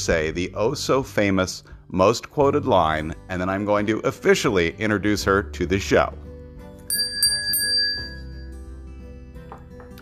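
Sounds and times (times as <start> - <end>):
speech: 0.0 - 6.3
small hand bell ringing: 6.9 - 8.6.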